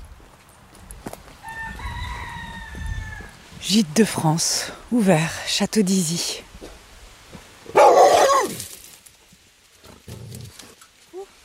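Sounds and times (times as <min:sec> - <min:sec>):
speech: 0:03.6 - 0:06.5
large dog's loud deep gruff bark at a medieval castle door: 0:07.7 - 0:08.6.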